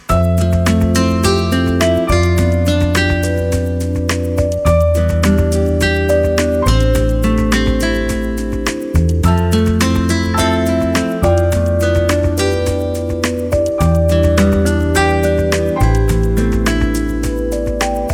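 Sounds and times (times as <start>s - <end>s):
lounge music: 0.1s - 18.1s.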